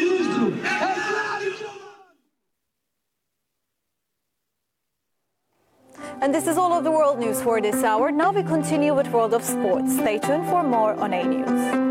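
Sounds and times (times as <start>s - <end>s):
large crowd chanting in unison at a street demonstration: 0.0s - 2.2s
speech: 6.2s - 11.8s.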